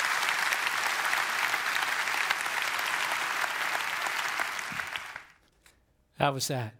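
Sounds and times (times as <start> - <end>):
crowd applauding with dense clapping: 0.0 - 5.4
speech: 6.2 - 6.7.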